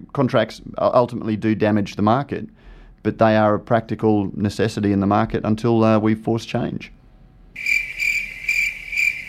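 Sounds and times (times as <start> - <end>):
speech: 0.2 - 7.0, 7.6 - 7.8
cricket chirping: 7.6 - 9.2.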